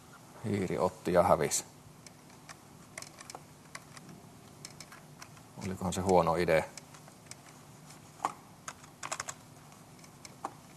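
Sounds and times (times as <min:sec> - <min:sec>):
speech: 0:00.4 - 0:01.8, 0:05.6 - 0:06.8
keystrokes on an unresponsive computer keyboard: 0:02.4 - 0:05.4, 0:08.6 - 0:10.6.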